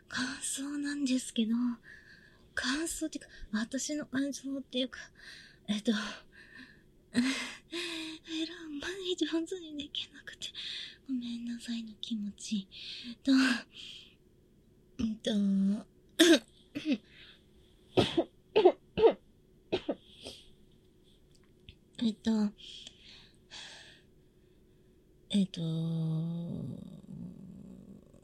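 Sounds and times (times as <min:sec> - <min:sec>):
speech: 0:00.2 - 0:02.0, 0:02.6 - 0:06.3, 0:07.1 - 0:14.0, 0:15.0 - 0:17.1, 0:18.0 - 0:19.2, 0:22.0 - 0:22.9, 0:25.3 - 0:27.4
person coughing after choking on a banana: 0:16.2 - 0:17.0, 0:18.0 - 0:20.4.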